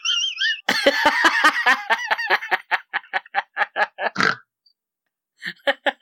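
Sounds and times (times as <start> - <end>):
laughter: 0.0 - 4.2
person snorting like a pig: 4.1 - 4.4.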